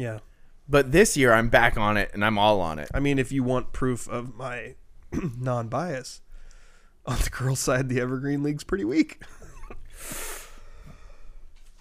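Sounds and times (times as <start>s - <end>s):
speech: 0.0s - 6.2s, 7.1s - 9.4s
quiet breathing: 0.2s - 0.7s, 6.2s - 7.1s, 9.9s - 11.7s
stifled choked cough: 5.1s - 5.5s.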